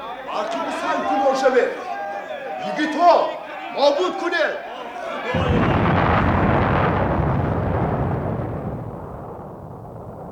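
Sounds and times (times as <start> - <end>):
speech: 0.4 - 1.9, 2.6 - 5.6
long heavy roar of rumbling debris: 5.4 - 10.3
massive explosion blowing up a cave entrance: 5.4 - 10.3.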